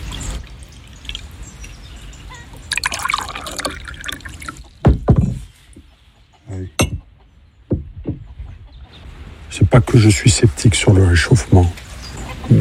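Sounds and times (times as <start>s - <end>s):
water poured for a drink: 0.0s - 4.9s
speech: 9.7s - 11.8s.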